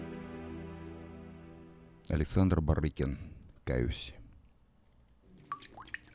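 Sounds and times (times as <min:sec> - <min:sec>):
speech: 0:02.1 - 0:04.2
water dripping: 0:04.9 - 0:06.1.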